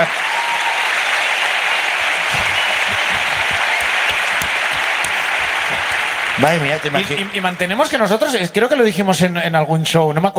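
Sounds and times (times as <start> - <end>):
crowd applauding: 0.0 - 7.6
speech: 6.4 - 10.3.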